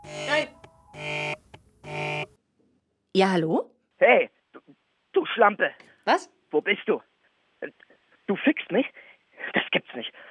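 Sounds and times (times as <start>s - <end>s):
telephone ringing: 0.0s - 2.3s
speech: 3.2s - 4.4s, 5.4s - 10.2s.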